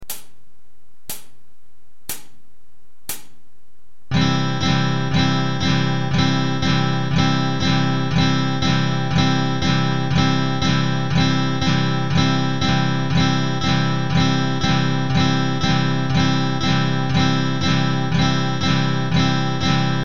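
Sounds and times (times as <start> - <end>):
guitar strumming exercise: 4.1 - 20.0.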